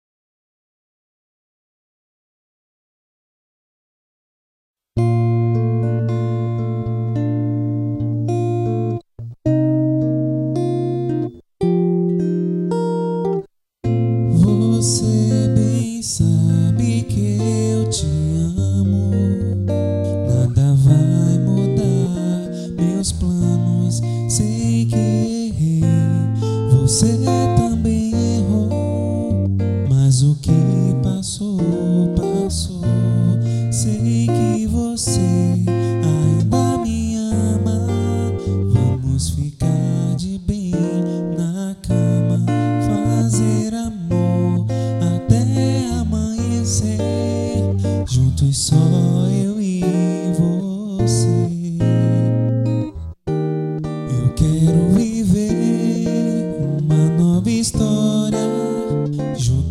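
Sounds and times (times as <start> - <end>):
acoustic guitar: 5.0 - 59.6
person singing: 14.2 - 52.9, 53.9 - 59.6.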